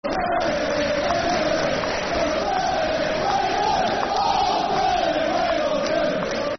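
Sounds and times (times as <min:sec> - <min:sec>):
football crowd chanting: 0:00.0 - 0:06.5.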